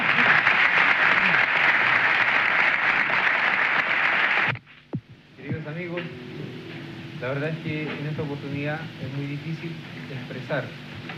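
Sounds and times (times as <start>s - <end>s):
audience applause at an evening concert tribute: 0.0s - 4.5s
speech: 7.4s - 10.8s.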